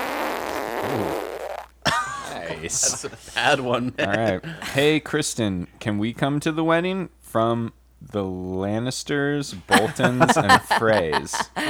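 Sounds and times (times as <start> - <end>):
long buzzy strained fart left as a phone message: 0.0 - 2.9
speech: 0.8 - 1.3, 2.5 - 11.6
laughter: 1.9 - 5.2, 9.6 - 11.6.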